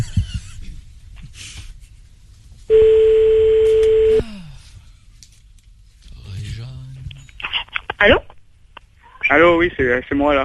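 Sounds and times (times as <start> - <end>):
telephone tone as someone places a call: 2.7 - 4.2
speech: 9.4 - 10.4.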